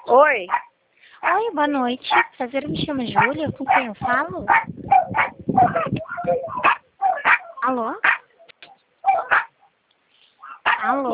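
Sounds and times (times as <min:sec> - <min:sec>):
dogs barking: 0:00.0 - 0:01.5, 0:02.1 - 0:02.3, 0:03.1 - 0:09.7, 0:10.4 - 0:10.9
speech: 0:00.1 - 0:06.8, 0:07.6 - 0:08.1, 0:10.8 - 0:11.1.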